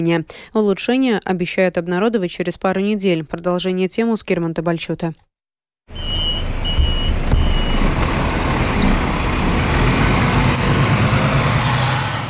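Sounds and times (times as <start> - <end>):
speech: 0.0 - 5.3
bus idling and passing: 5.9 - 12.2
street traffic rumbling at a crowded bus stop by a bridge: 5.9 - 12.2.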